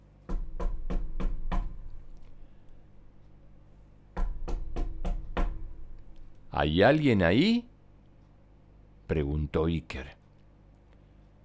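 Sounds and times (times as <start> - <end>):
knocking on a wooden closet door: 0.3 - 1.8, 4.2 - 5.8
speech: 6.6 - 7.7, 9.1 - 10.2.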